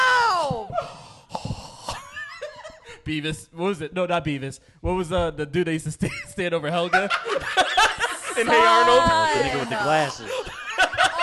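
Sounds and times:
voice imitating a man's heavy wheezy breathing into a microphone: 0.8 - 2.1
speech: 3.1 - 10.6
laughter: 6.8 - 11.2.

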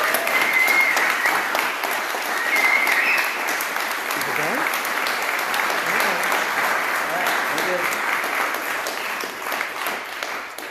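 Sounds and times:
audience at a church camp applauding: 0.0 - 10.6.

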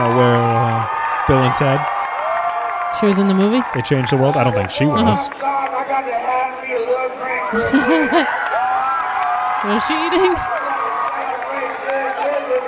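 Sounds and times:
crowd roar with shouts and cheers from a played video: 0.0 - 12.6
speech: 1.3 - 2.0, 3.0 - 8.4, 9.6 - 10.5
laughter: 4.5 - 5.3, 7.3 - 8.5, 9.6 - 10.5.

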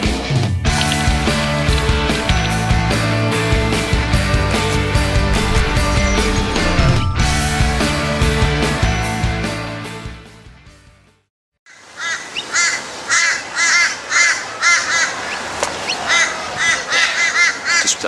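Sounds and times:
music: 0.0 - 11.3
crows cawing: 11.7 - 18.0.

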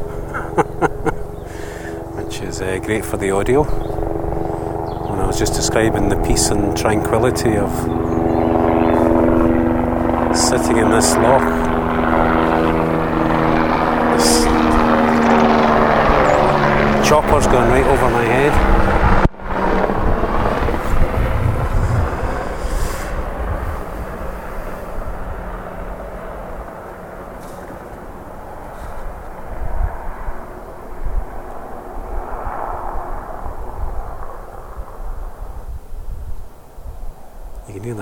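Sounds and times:
laughter: 0.0 - 2.4
helicopter flying overhead above a loch near Ben Venue: 0.0 - 37.9
speech: 2.4 - 4.0, 5.1 - 8.3, 10.5 - 12.4, 17.1 - 19.0.

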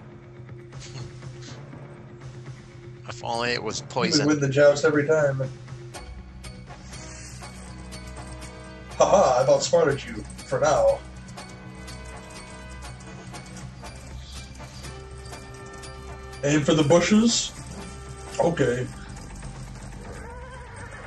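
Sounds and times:
sustained droning musical background: 0.0 - 21.0
speech: 3.1 - 5.6, 9.5 - 11.1, 16.4 - 17.6, 18.4 - 19.0
horse hooves clip-clopping: 10.0 - 21.0
horse neighing: 20.1 - 21.0.

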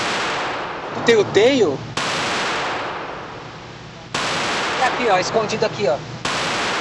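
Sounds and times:
gunshot: 0.0 - 1.2, 2.0 - 3.3, 4.1 - 5.3, 6.2 - 6.7
speech: 1.0 - 1.9, 5.0 - 6.1.

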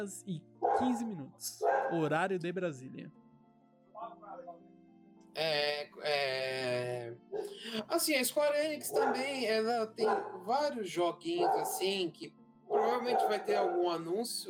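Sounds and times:
speech: 0.0 - 3.2, 5.4 - 14.4
dog barking: 0.6 - 2.0, 7.4 - 7.6, 8.9 - 9.4, 10.0 - 10.5, 11.4 - 12.0, 12.7 - 14.0.

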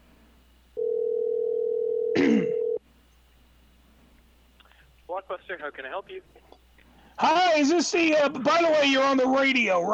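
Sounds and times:
telephone dial tone as a call is placed: 0.8 - 2.8
speech: 5.2 - 6.6, 7.2 - 9.9.

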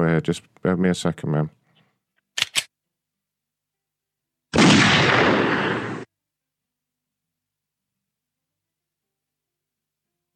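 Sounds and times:
speech: 0.2 - 1.6
short sharp clicks: 2.4 - 2.7
gunshot: 4.6 - 6.1.

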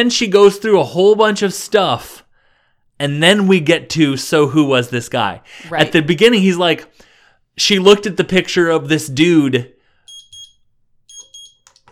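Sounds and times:
speech: 0.0 - 2.2, 3.0 - 9.8
timer alarm beeping: 10.1 - 11.7.

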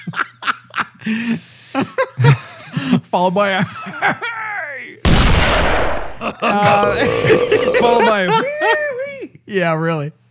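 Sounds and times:
speech: 1.0 - 4.4, 6.2 - 8.6, 9.5 - 10.2
voice imitating rapid gunfire: 5.1 - 6.3.

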